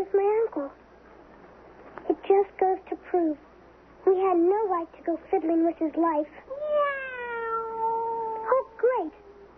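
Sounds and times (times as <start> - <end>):
speech: 0.1 - 0.9, 2.3 - 3.5, 4.1 - 6.7
cat meowing and yowling: 6.5 - 9.4.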